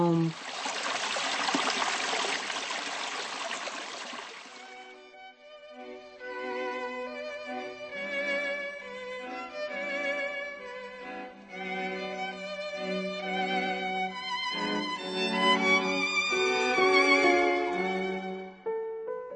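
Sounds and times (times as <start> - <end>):
rushing water of a river in the Czech Republic: 0.3 - 4.6
sustained melodic music: 4.6 - 19.3.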